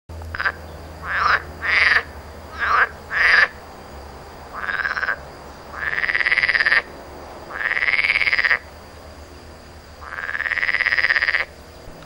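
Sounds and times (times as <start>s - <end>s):
edible frog calling: 0.3s - 11.8s.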